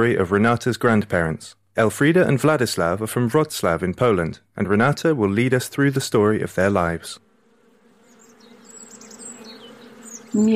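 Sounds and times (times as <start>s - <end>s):
speech: 0.0s - 7.2s, 10.3s - 10.5s
many bees buzzing around garden hives: 7.2s - 10.5s
faint bird chirps: 8.0s - 10.5s.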